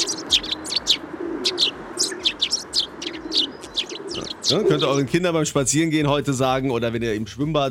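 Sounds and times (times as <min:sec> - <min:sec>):
low dove-like cooing murmur: 0:00.0 - 0:05.1
Eurasian tree sparrows chirping: 0:00.0 - 0:06.2
speech: 0:04.5 - 0:07.7.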